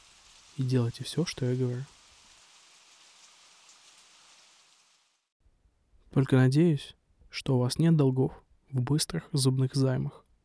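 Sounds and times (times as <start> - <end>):
steady dense rain falling: 0.0 - 5.3
speech: 0.6 - 2.0, 6.2 - 10.2.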